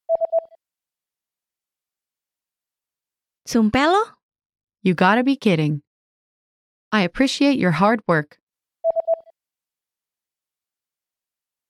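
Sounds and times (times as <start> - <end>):
short electronic beeps: 0.1 - 0.6, 8.9 - 9.3
speech: 3.5 - 4.2, 4.8 - 5.8, 6.9 - 8.4.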